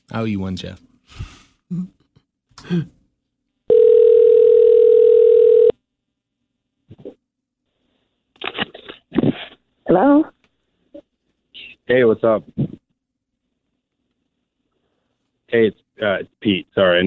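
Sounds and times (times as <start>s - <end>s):
speech: 0.1s - 2.0s, 2.6s - 3.0s, 9.9s - 10.3s, 11.9s - 12.6s, 15.5s - 17.0s
telephone dial tone: 3.7s - 5.7s.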